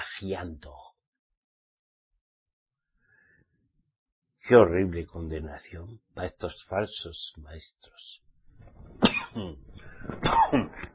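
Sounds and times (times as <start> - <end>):
speech: 0.2 - 0.9, 4.5 - 10.9
raspy coughs: 9.0 - 9.6, 10.2 - 10.9.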